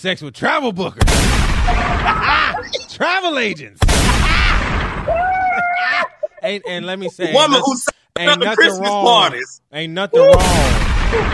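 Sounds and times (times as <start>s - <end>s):
speech: 0.0s - 11.3s
loud gunshot sound effect with booming blast: 1.0s - 2.3s, 3.8s - 5.1s, 10.4s - 11.3s
laughter: 1.7s - 9.5s.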